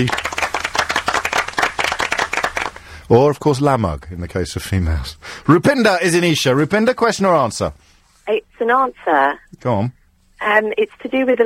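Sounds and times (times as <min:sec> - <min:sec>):
speech: 0:00.0 - 0:00.2, 0:03.1 - 0:11.4
applause from a small group: 0:00.0 - 0:03.0.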